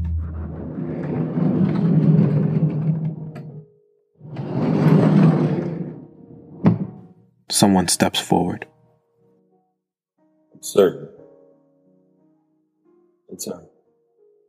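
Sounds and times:
heavy door grinding open: 0:00.0 - 0:03.4, 0:04.2 - 0:07.0
speech: 0:07.6 - 0:08.7, 0:10.6 - 0:11.2, 0:13.3 - 0:13.7.

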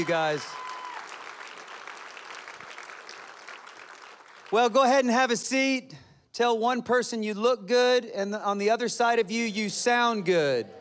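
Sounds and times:
speech: 0:00.0 - 0:00.6, 0:04.5 - 0:10.7
congregation applauding pastors during a church service: 0:00.0 - 0:05.1.

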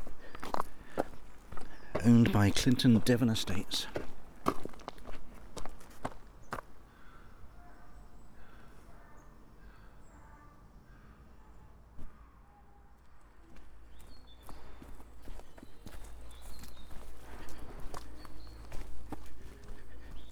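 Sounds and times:
footsteps crunching along an uneven woodland path: 0:00.0 - 0:06.9, 0:13.6 - 0:20.3
speech: 0:02.0 - 0:04.0.

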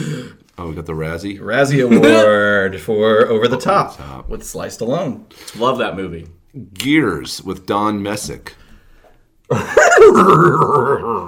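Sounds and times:
speech: 0:00.2 - 0:08.6, 0:09.5 - 0:11.2
laughter: 0:01.9 - 0:02.4, 0:09.5 - 0:11.2
man's voice imitating a cartoon dog like a horse whinny: 0:10.4 - 0:11.2.

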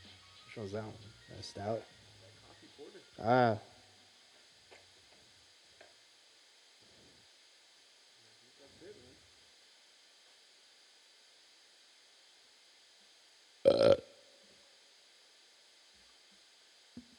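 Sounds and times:
steady faint hiss: 0:00.0 - 0:17.1
speech: 0:00.6 - 0:02.0, 0:02.8 - 0:03.7
burp: 0:13.6 - 0:14.2.

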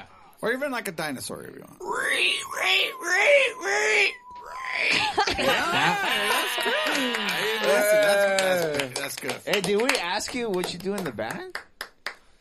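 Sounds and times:
speech: 0:00.4 - 0:04.2, 0:04.8 - 0:11.7
person imitating a pig squeal: 0:01.7 - 0:08.0
laughter: 0:04.9 - 0:09.1.

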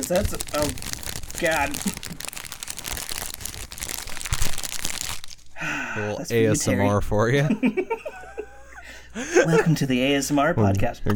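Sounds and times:
speech: 0:00.0 - 0:02.3, 0:05.6 - 0:08.4, 0:09.2 - 0:11.1
chip bag crinkling: 0:00.0 - 0:05.6.

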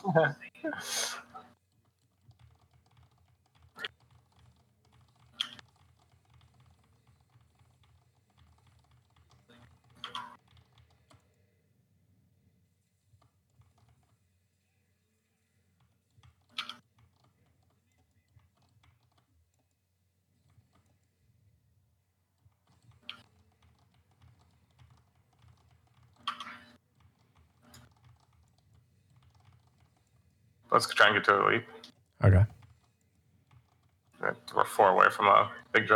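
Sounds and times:
speech: 0:00.1 - 0:01.2, 0:30.7 - 0:32.6, 0:34.5 - 0:35.9
computer keyboard typing: 0:01.5 - 0:11.4, 0:13.2 - 0:14.2, 0:15.8 - 0:19.8, 0:22.4 - 0:30.4, 0:31.0 - 0:35.9.

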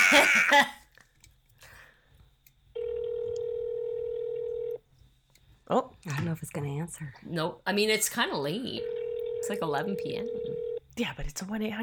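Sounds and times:
speech: 0:00.1 - 0:00.8, 0:05.7 - 0:11.8
telephone ringback tone on a call to a toll-free number: 0:02.8 - 0:04.8, 0:08.8 - 0:10.8.

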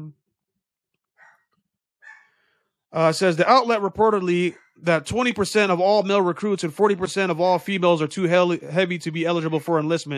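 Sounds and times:
dog barking in the background: 0:01.2 - 0:02.4
speech: 0:02.9 - 0:10.1.

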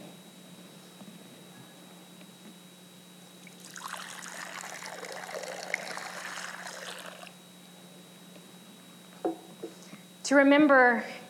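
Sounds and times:
quiet hum: 0:00.0 - 0:11.2
water pouring into a baptismal font during a church service: 0:03.4 - 0:07.4
speech: 0:10.3 - 0:11.2.

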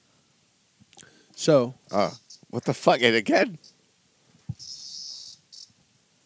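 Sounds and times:
speech: 0:01.4 - 0:03.7
cicada buzzing: 0:01.8 - 0:02.7, 0:04.5 - 0:05.8.

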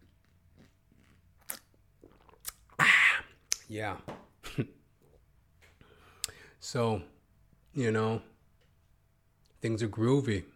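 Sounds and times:
soft mouth clicks: 0:01.4 - 0:03.7, 0:06.2 - 0:06.4
speech: 0:03.7 - 0:04.8, 0:06.6 - 0:08.3, 0:09.6 - 0:10.5.

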